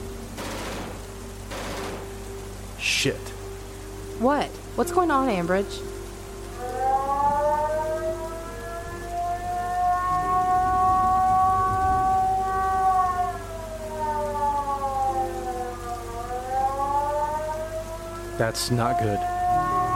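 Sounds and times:
steady hiss: 0:00.0 - 0:19.9
speech: 0:02.8 - 0:03.4, 0:04.2 - 0:06.0, 0:18.4 - 0:19.6
warning siren wailing: 0:04.2 - 0:19.9.

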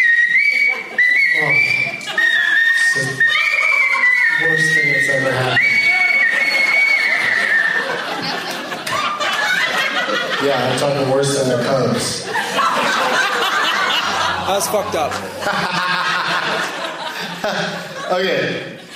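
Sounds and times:
person whistling a tune shrilly and off-key: 0:00.0 - 0:07.9
people chattering: 0:00.0 - 0:18.9
people laughing: 0:00.0 - 0:18.9
speech: 0:10.6 - 0:12.4, 0:14.5 - 0:15.9, 0:17.5 - 0:18.7.

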